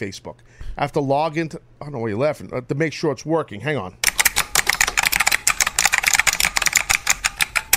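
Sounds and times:
speech: 0.0s - 4.1s
computer keyboard keystrokes typing a password: 4.0s - 7.7s.

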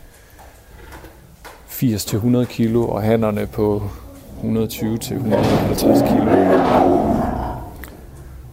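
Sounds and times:
speech: 1.8s - 7.4s
lions roaring at an animal park: 3.7s - 8.4s.

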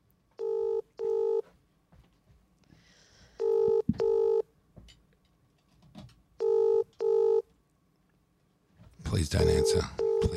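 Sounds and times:
faint noise: 0.0s - 10.3s
phone ringing tone on speakerphone: 0.4s - 1.4s, 3.4s - 4.5s, 6.4s - 7.5s, 9.4s - 10.3s
telephone dialing on speakerphone: 0.4s - 1.4s, 3.4s - 4.4s, 6.4s - 7.4s, 9.5s - 10.3s
speech: 9.2s - 10.3s.

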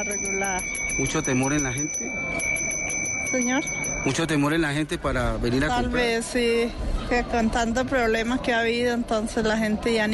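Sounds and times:
ice cream vendor's hand bell ringing: 0.0s - 4.4s
speech: 0.1s - 2.7s, 3.3s - 10.1s.

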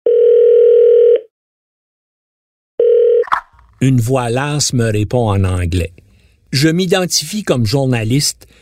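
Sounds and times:
long steady telephone ringing tone: 0.1s - 1.3s, 2.8s - 3.3s
speech: 3.8s - 8.5s.

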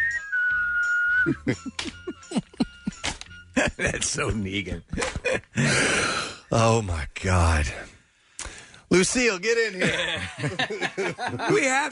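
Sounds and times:
person whistling a short tune: 0.0s - 3.0s
speech: 1.2s - 2.5s, 3.7s - 7.9s, 8.9s - 11.9s
laughter: 1.3s - 4.1s, 9.8s - 11.9s.

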